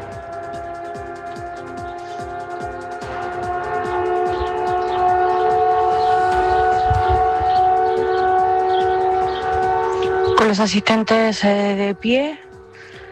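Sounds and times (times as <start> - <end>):
fire brigade sirens sounding in commemoration of a tornado: 0.0 - 13.1
speech: 10.5 - 12.4.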